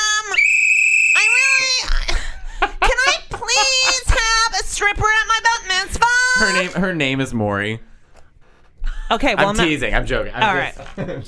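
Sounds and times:
shrill whistle blast: 0.3 - 1.6
laughter: 1.3 - 4.7, 10.6 - 11.2
speech: 4.8 - 7.9, 9.1 - 11.2.

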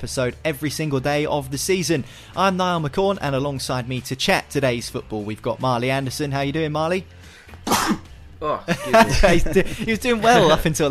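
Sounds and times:
speech: 0.0 - 10.8
sharp breathy sneeze: 7.6 - 8.1
laughter: 8.7 - 10.8.

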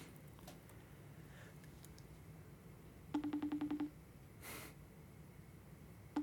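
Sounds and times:
telephone calling tone while placing a call: 3.2 - 4.0.

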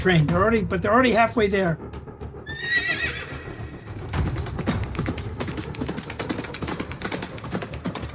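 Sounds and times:
speech: 0.0 - 1.9
horse hooves galloping: 0.0 - 8.1
horse neighing: 2.5 - 3.8.

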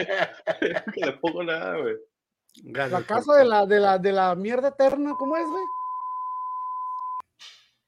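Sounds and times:
laughter: 0.0 - 1.6
speech: 0.0 - 5.8
censor bleep tone: 5.1 - 7.2.

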